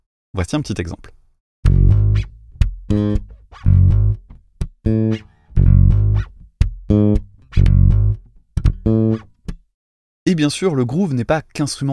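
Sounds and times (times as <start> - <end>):
speech: 0.4 - 1.2, 10.4 - 11.9
virtual sampled instrument playing short bright notes: 1.7 - 9.3
finger-slide squeaks and clicks: 7.5 - 7.8.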